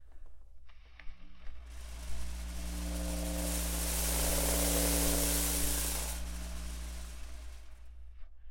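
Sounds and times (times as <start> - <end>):
foil fluttering: 1.7 - 8.0.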